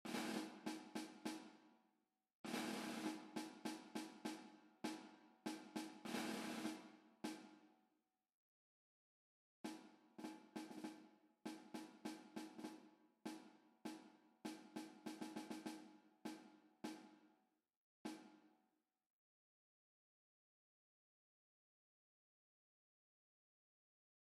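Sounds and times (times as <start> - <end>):
snare drum: 0.1 - 1.6, 2.5 - 7.6, 9.7 - 17.2, 18.1 - 18.4.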